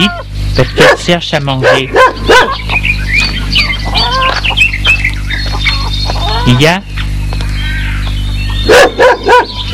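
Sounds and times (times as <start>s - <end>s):
speech: 0.0s - 2.8s, 6.5s - 6.9s
low steady hum: 0.0s - 9.7s
dog barking: 0.8s - 2.6s, 8.6s - 9.6s.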